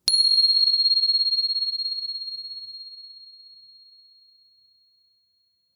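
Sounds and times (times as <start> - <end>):
meditation bell ringing: 0.1 - 3.8.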